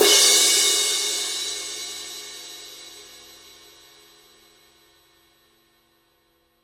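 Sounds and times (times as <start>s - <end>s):
20-inch medium crash cymbal hit on the edge: 0.0s - 4.6s.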